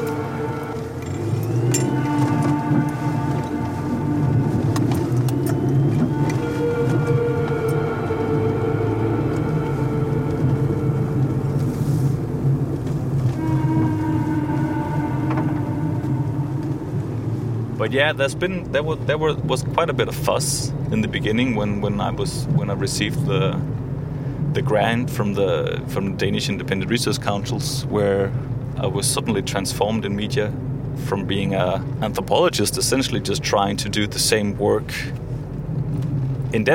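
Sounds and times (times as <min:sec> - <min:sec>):
car engine humming as the car moves aside for a bus: 0:00.0 - 0:36.7
low road rumble: 0:00.0 - 0:36.7
speech: 0:17.9 - 0:23.7, 0:24.5 - 0:35.2, 0:36.5 - 0:36.7.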